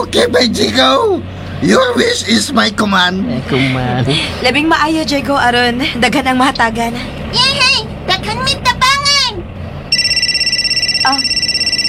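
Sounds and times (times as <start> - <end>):
speech: 0.0 - 8.6, 11.1 - 11.3
mobile phone ringing: 9.9 - 11.8.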